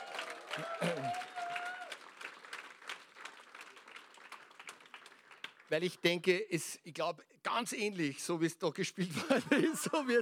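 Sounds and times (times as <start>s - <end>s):
brief cheer from the audience: 0.0s - 2.3s
audience applause: 0.0s - 6.1s
speech: 0.6s - 1.3s, 5.7s - 10.2s
laughter: 9.1s - 10.2s.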